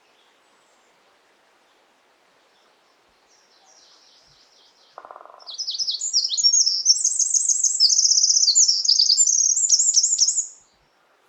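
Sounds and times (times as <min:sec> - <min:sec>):
Eurasian wren (Troglodytes troglodytes) song: 0:03.4 - 0:10.8.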